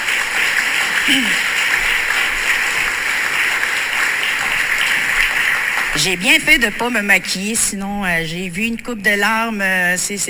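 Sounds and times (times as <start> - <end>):
large crowd applauding a children's choir: 0.0 - 6.6
speech: 1.1 - 1.6, 6.0 - 10.2.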